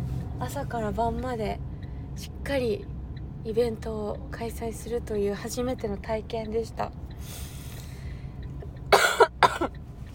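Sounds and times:
speech: 0.4s - 7.5s, 9.6s - 9.8s
harsh coughs: 8.9s - 9.7s.

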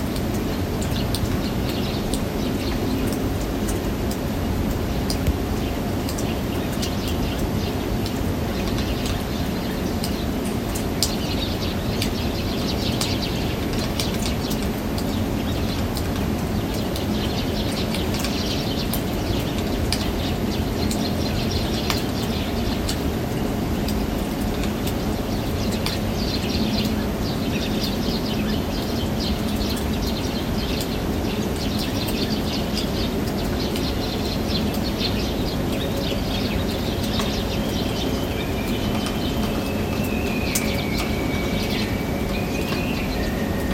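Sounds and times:
snowmelt water dripping from a balcony: 0.0s - 43.7s.

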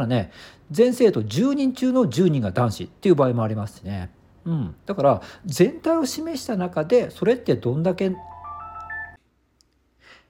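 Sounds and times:
speech: 0.0s - 8.3s
telephone ringing with electronic melody of rising beeping tones: 8.1s - 9.2s.

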